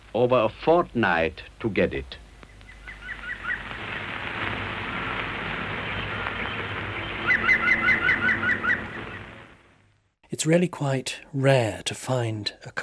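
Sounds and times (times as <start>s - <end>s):
steady hiss and crackle: 0.0s - 12.8s
speech: 0.2s - 2.2s, 10.4s - 12.8s
green woodpecker laughing call: 7.0s - 9.2s.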